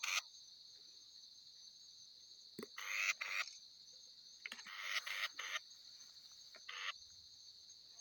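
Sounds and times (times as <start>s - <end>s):
Batis mixta forest batis making rasping calls: 0.0s - 0.2s, 2.8s - 3.5s, 4.5s - 5.7s, 6.6s - 7.0s.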